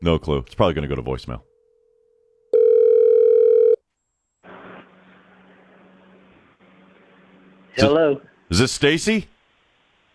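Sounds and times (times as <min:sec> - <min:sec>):
speech: 0:00.0 - 0:01.5, 0:07.8 - 0:09.4
telephone dial tone while dialing a call: 0:02.5 - 0:03.8.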